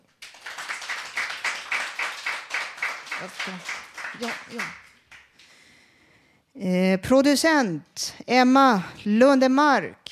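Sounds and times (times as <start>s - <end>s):
applause from a small group: 0.0s - 5.4s
speech: 3.2s - 4.8s, 6.6s - 10.0s.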